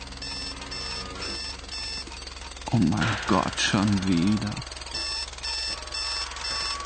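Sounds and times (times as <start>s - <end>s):
electronic alarm clock ringing: 0.0s - 6.8s
speech: 2.7s - 4.7s.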